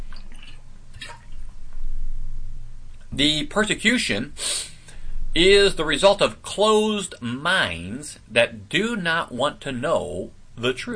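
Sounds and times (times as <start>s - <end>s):
person drinking water: 0.0s - 1.6s
low hum: 0.0s - 10.9s
speech: 3.2s - 4.7s, 5.3s - 10.9s.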